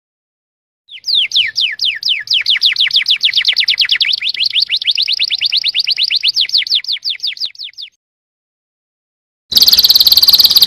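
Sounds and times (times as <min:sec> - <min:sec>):
domestic canary singing: 0:00.9 - 0:08.0, 0:09.6 - 0:10.6.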